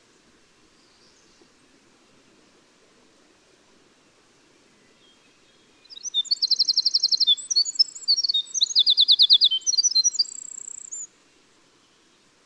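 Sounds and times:
winter wren singing: 4.8s - 11.1s.

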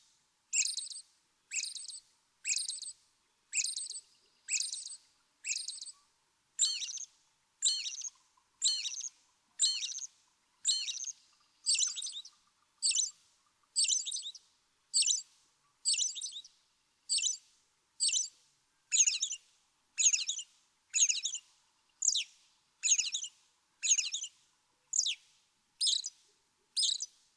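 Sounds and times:
American robin singing caroling phrases: 0.5s - 2.9s, 3.5s - 5.9s, 6.6s - 7.1s, 7.6s - 10.1s, 10.7s - 13.1s, 13.7s - 14.4s, 14.9s - 15.2s, 15.9s - 16.5s, 20.0s - 21.4s, 22.0s - 22.3s, 22.8s - 23.3s, 23.8s - 24.3s, 24.9s - 26.2s, 26.7s - 27.1s.

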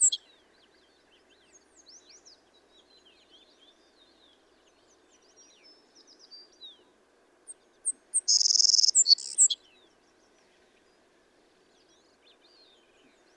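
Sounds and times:
Savannah sparrow song: 0.0s - 13.3s.

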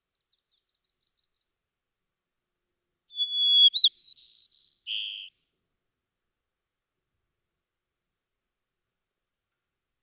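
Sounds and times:
White-crowned sparrow song: 0.0s - 1.6s, 3.1s - 5.3s.

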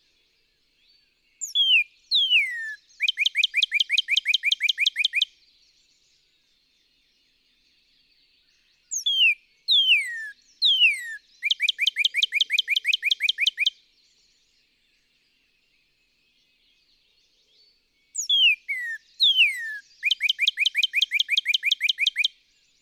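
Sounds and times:
Northern cardinal song with short notes and downslurred whistles: 1.4s - 5.3s, 8.9s - 13.8s, 18.2s - 22.4s.

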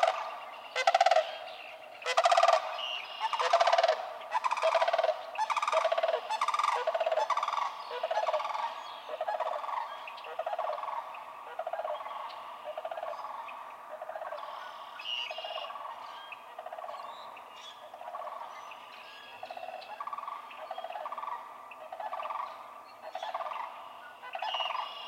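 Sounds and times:
faint high bird calls: 0.0s - 25.0s
sandhill crane giving rolling rattling calls: 0.8s - 1.4s, 2.0s - 8.6s.

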